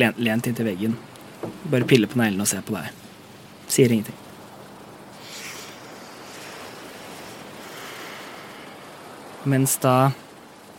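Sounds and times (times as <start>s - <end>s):
speech: 0.0s - 3.0s, 3.7s - 4.2s, 9.4s - 10.2s
ocean waves washing around a sailing ship at sea: 0.9s - 10.7s
wind blowing at sea: 0.9s - 10.7s.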